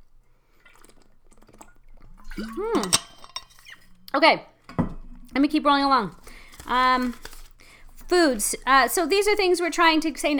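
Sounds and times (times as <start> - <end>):
quiet sip of water: 0.5 - 2.9
speech: 2.4 - 3.1, 4.2 - 4.5, 5.3 - 7.3, 8.1 - 10.3.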